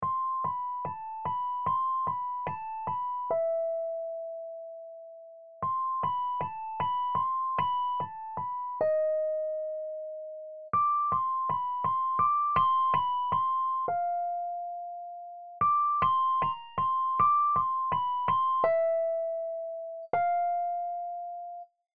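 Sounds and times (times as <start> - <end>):
Rhodes electric piano: 0.0 - 21.7.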